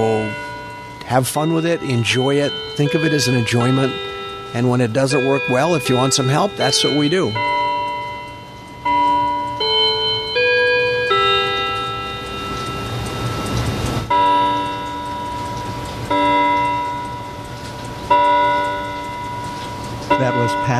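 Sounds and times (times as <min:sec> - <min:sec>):
clock chiming a slow melody of bell-like notes: 0:00.0 - 0:20.7
speech: 0:01.1 - 0:07.6.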